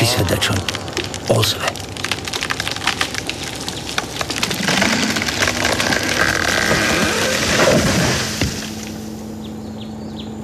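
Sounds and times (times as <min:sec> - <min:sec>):
tree trunk wood crackling and splintering: 0:00.0 - 0:09.2
speech: 0:01.3 - 0:01.8
motorized power saw cutting through a very thick hollow tree trunk: 0:04.2 - 0:09.2.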